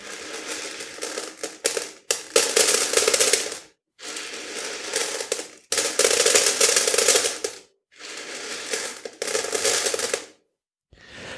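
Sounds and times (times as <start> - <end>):
dried beans rattling and clattering: 0.0 - 10.3.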